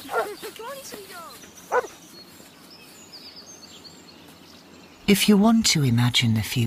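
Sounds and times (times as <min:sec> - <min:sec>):
speech: 0:00.0 - 0:02.1, 0:05.1 - 0:06.6
dog barking: 0:00.1 - 0:00.4, 0:01.7 - 0:02.0.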